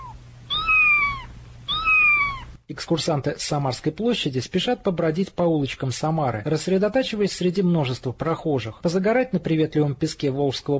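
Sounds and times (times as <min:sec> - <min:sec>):
ordinary street cat meowing in Samara: 0:00.0 - 0:02.6
faint low hum: 0:00.0 - 0:10.7
speech: 0:02.7 - 0:10.7.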